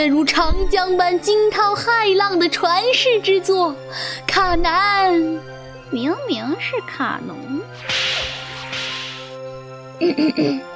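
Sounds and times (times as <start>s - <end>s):
speech: 0.0s - 8.2s, 10.0s - 10.7s
microphone cable lashing like a whip: 7.8s - 9.4s.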